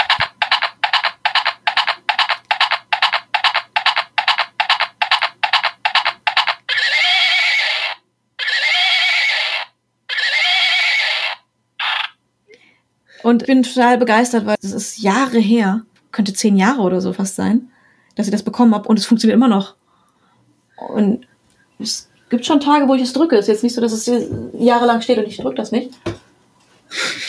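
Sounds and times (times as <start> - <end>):
electronic galloping hoofbeats from a pink hobby-horse unicorn toy: 0.0 - 6.7
tinny electronic neighs from a pink hobby-horse unicorn toy: 6.6 - 12.2
speech: 13.3 - 19.8, 20.8 - 26.2, 26.9 - 27.2
laughter: 26.9 - 27.2.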